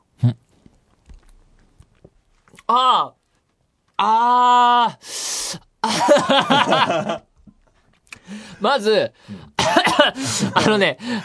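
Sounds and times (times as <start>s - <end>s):
mouth sounds of someone eating ice cream topped with wasabi: 0.0s - 4.0s, 7.4s - 8.3s
speech: 0.2s - 0.4s, 2.7s - 3.2s, 4.0s - 7.3s, 8.6s - 11.2s
laughter: 5.8s - 7.2s.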